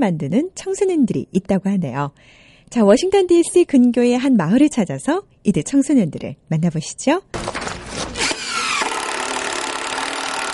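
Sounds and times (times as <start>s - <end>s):
speech: 0.0s - 7.6s
saw cutting wood for a wheelchair ramp: 7.4s - 10.5s.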